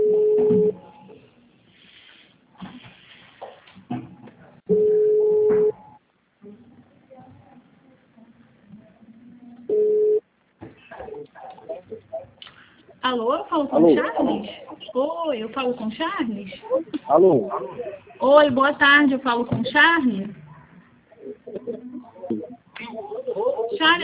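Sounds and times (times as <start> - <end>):
faint sounds: 0.0 - 24.0
telephone call ringback tones on the line: 4.7 - 5.8, 9.7 - 10.2
speech: 13.7 - 20.4, 23.8 - 24.0.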